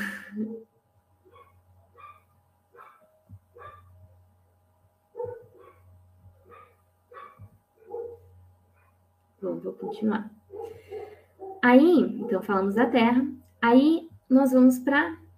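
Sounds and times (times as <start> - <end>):
dogs barking and yelping: 1.3 - 4.0, 5.1 - 9.0, 9.8 - 12.7
speech: 9.4 - 11.0, 11.6 - 15.2.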